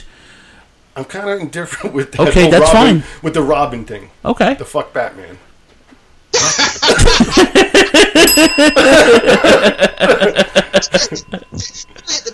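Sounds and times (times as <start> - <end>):
speech: 1.0 - 5.5, 6.9 - 12.3
laughter or chuckling: 6.4 - 12.3
bell ringing rapidly: 8.2 - 12.3.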